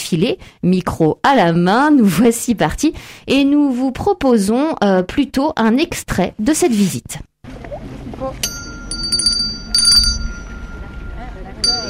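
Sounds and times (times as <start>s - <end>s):
speech: 0.1s - 7.3s
school bell ringing: 8.4s - 11.8s.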